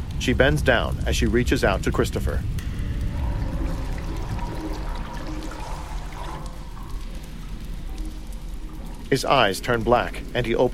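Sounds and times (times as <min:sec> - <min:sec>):
speech: 0:00.2 - 0:02.6, 0:09.1 - 0:10.7
liquid flowing into a drain: 0:02.6 - 0:10.7.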